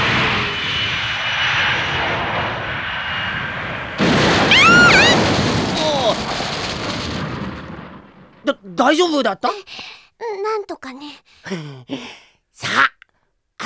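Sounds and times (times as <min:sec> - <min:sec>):
cartoon aircraft engine roaring while landing: 0:00.0 - 0:07.9
sweeping whistle-like tones: 0:04.5 - 0:05.2
speech: 0:08.8 - 0:13.0.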